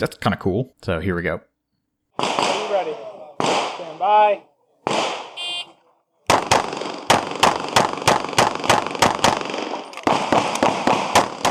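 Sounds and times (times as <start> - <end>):
speech: 0.0 - 1.5, 4.0 - 5.0
gunshots at a practical shooting competition stage: 2.2 - 5.4, 6.3 - 11.4
start beep at a practical shooting competition stage: 5.4 - 5.7.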